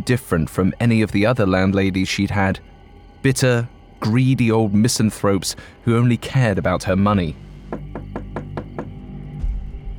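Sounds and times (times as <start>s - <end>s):
speech: 0.0s - 7.8s
knocking on a wooden door: 7.7s - 9.0s.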